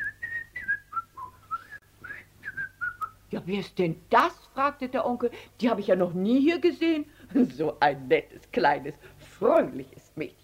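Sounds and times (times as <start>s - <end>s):
girl whistling a short tune: 0.0s - 3.2s
speech: 3.3s - 10.4s.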